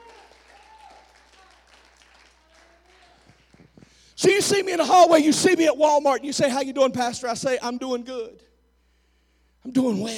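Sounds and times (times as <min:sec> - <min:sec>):
faint cheers: 0:00.0 - 0:01.6
audience applause in a large room: 0:00.0 - 0:03.8
speech: 0:04.2 - 0:08.5, 0:09.7 - 0:10.1.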